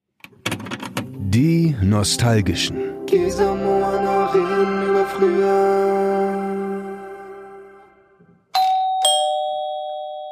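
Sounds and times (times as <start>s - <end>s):
speech: 1.4s - 6.4s
doorbell two-note ding-dong chime: 8.5s - 10.2s.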